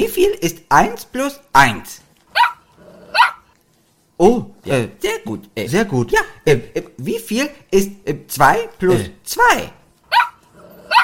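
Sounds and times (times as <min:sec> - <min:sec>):
speech: 0:00.0 - 0:02.5, 0:04.2 - 0:09.8
dog barking: 0:02.3 - 0:03.5, 0:10.1 - 0:11.0.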